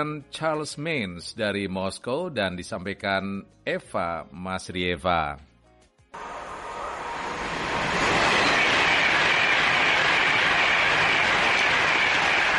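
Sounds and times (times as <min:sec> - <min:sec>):
speech: 0:00.0 - 0:05.5
train rumbling along rails: 0:06.2 - 0:12.5.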